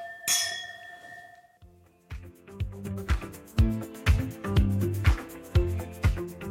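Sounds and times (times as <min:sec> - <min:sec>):
wine glasses clinking in a toast: 0:00.0 - 0:01.6
upbeat rhythmic music with steady beats: 0:01.6 - 0:06.4.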